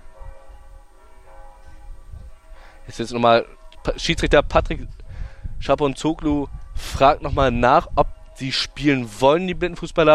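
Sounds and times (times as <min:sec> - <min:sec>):
church bells ringing before a blind football match: 0:00.0 - 0:05.3
speech: 0:02.9 - 0:05.0, 0:05.6 - 0:10.1.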